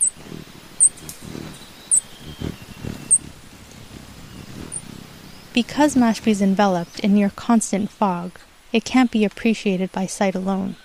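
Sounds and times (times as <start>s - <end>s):
black-breasted puffleg hummingbird chirping: 0.0s - 8.4s
low rumbling background of wind or noise: 0.0s - 8.6s
speech: 5.6s - 10.8s.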